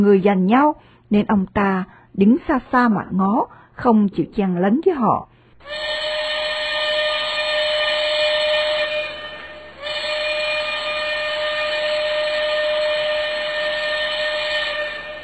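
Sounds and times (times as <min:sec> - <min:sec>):
speech: 0:00.0 - 0:05.9
steam train whistle at a station: 0:05.6 - 0:15.2.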